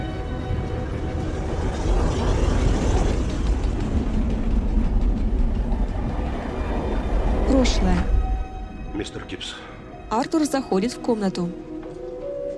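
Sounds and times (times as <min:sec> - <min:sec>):
rhythmic clatter of train wheels: 0:00.0 - 0:07.5
train rumbling along the track: 0:00.0 - 0:11.4
speech: 0:07.7 - 0:08.1, 0:09.0 - 0:11.7.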